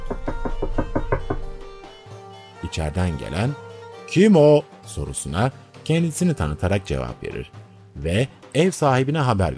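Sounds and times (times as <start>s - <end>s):
knocking on the door of a house: 0.0s - 1.8s
speech: 2.7s - 9.5s.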